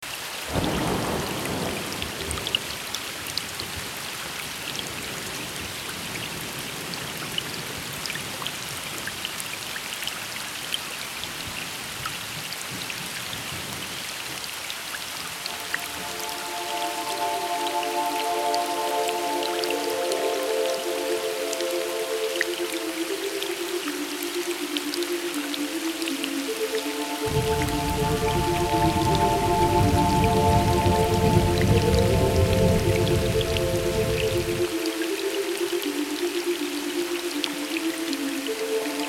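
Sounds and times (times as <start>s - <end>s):
rain: 0.0s - 39.0s.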